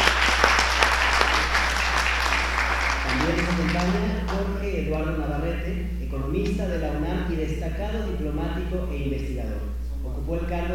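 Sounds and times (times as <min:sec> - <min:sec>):
audience applause at an event introducing a diplomat: 0:00.0 - 0:04.5
constant low hum: 0:00.0 - 0:10.7
speech: 0:05.1 - 0:10.7.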